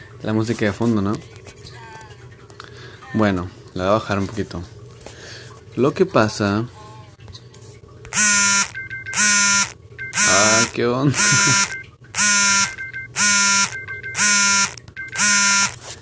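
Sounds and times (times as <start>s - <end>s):
speech: 0.2s - 1.4s, 3.1s - 4.8s, 5.8s - 6.8s, 10.8s - 11.8s
loud electronic alarm buzzing in short harsh bursts: 8.1s - 15.9s.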